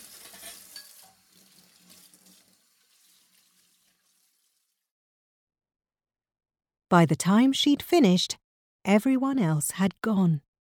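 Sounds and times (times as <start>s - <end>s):
running water splashing into a sink: 0.0s - 4.9s
speech: 6.9s - 10.5s.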